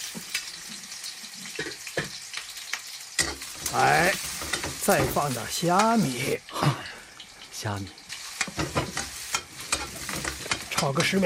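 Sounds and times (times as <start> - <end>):
scallion and ginger sizzling in hot oil in a wok: 0.0 - 11.2
stirring scrapes in a wok: 3.2 - 5.2, 8.2 - 10.9
speech: 3.7 - 4.3, 4.9 - 6.8, 7.6 - 8.0, 8.6 - 9.1, 10.8 - 11.2.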